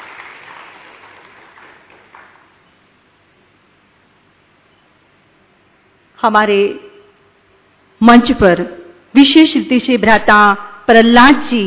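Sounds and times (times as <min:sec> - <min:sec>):
crowd applauding singers at a stage event: 0:00.0 - 0:02.6
speech: 0:06.2 - 0:06.8, 0:08.0 - 0:11.6.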